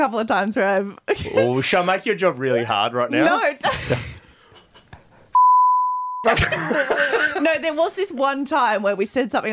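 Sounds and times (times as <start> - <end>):
speech: 0.0 - 4.1, 6.2 - 9.5
laughter: 3.3 - 5.2, 6.2 - 7.6
censor beep tone: 5.4 - 6.3.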